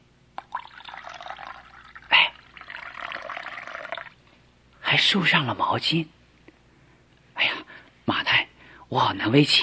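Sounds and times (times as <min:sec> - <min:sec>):
water poured into a basin: 0:00.4 - 0:04.2
speech: 0:04.9 - 0:06.2, 0:08.9 - 0:09.6.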